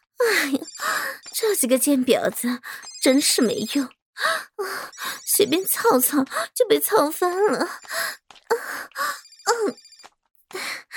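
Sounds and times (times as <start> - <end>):
phone ringtone: 0.5 - 1.4, 9.2 - 10.1
speech: 0.5 - 8.2.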